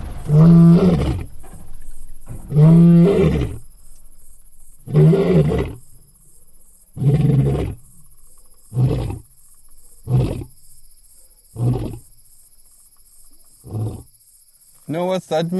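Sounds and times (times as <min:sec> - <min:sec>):
dominant male lion roaring and grunting: 0:00.0 - 0:03.7, 0:04.8 - 0:05.9, 0:06.9 - 0:08.0, 0:08.6 - 0:10.6, 0:11.5 - 0:12.1, 0:13.6 - 0:14.1
speech: 0:00.3 - 0:01.3, 0:14.9 - 0:15.5.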